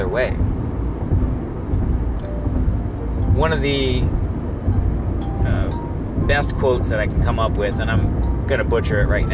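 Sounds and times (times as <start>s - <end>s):
road noise inside a moving car: 0.0s - 9.3s
speech: 0.1s - 0.5s, 3.4s - 4.2s, 6.3s - 9.3s.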